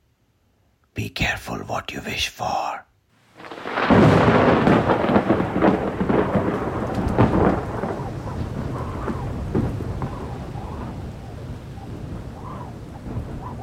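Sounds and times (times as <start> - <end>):
speech: 1.0 - 2.8
deep rumble of thunder on a cold wet night: 3.3 - 13.6.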